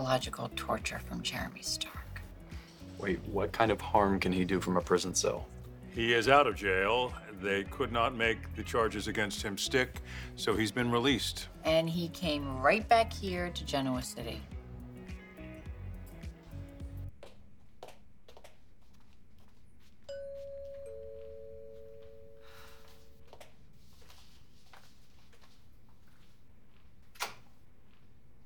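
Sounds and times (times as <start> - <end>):
speech: 0.1 - 2.0, 3.0 - 14.5
doorbell ringing with a two-note ding-dong chime: 20.1 - 23.2.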